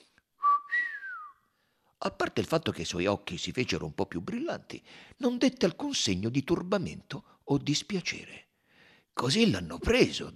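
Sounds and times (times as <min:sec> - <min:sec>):
person giving a short surprised whistle: 0:00.4 - 0:01.5
speech: 0:02.0 - 0:08.4, 0:09.2 - 0:10.3.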